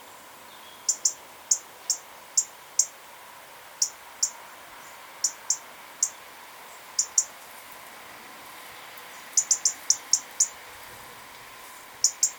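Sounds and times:
faint steady background hiss: 0.0 - 12.3
European robin Erithacus rubecula ticking calls: 0.5 - 3.0, 3.7 - 7.4, 9.1 - 10.6, 12.0 - 12.3.

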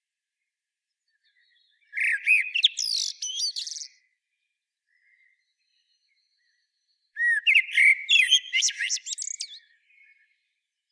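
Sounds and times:
common blackbird Turdus merula singing: 1.2 - 4.0, 5.0 - 10.2.

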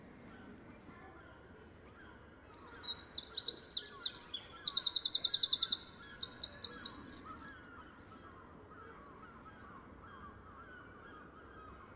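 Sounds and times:
faint steady background noise: 0.0 - 11.9
Eurasian wren Troglodytes troglodytes song: 2.6 - 7.8.

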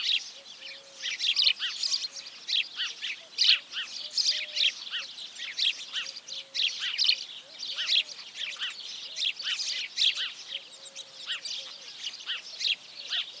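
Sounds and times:
House sparrows Passer domesticus chirping: 0.0 - 13.3.

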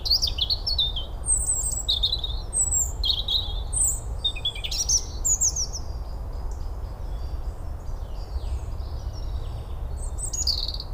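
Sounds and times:
European robin Erithacus rubecula song: 0.0 - 10.9.

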